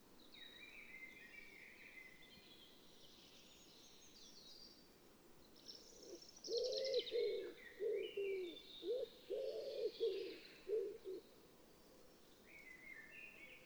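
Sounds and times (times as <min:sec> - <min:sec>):
common wood pigeon cooing: 0:06.6 - 0:11.2.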